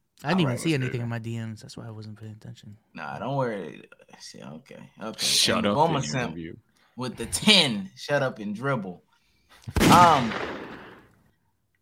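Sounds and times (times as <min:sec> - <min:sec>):
speech: 0:00.2 - 0:10.6
gunshot sound effect: 0:09.7 - 0:11.2.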